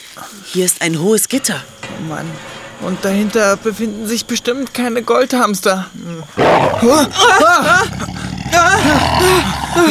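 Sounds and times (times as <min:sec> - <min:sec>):
speech: 0:00.2 - 0:09.9
tiger roaring: 0:06.4 - 0:09.9.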